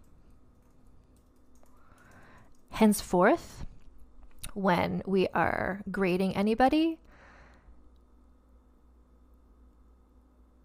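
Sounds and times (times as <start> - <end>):
fingers typing on a computer keyboard: 0.0 - 2.7
low steady hum: 0.0 - 10.6
speech: 2.8 - 3.7, 4.6 - 7.0.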